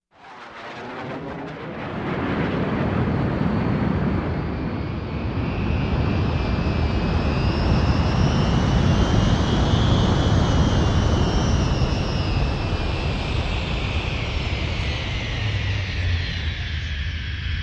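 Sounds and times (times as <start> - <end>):
rocket taking off and landing: 0.1 - 17.5.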